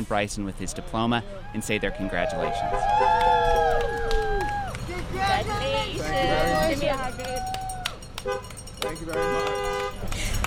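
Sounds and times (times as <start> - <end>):
speech: 0.0 - 3.6, 8.2 - 9.7
people cheering and shouting: 0.6 - 8.0
school bus arriving in a cul-de-sac: 2.3 - 10.4
school bus horn honking: 8.2 - 10.1.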